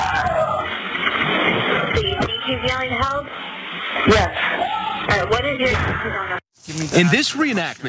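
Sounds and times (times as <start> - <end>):
desperate screams for help through a tinny phone line: 0.0 - 0.7
constant noise: 0.0 - 7.8
speech: 4.0 - 4.4, 5.2 - 7.8.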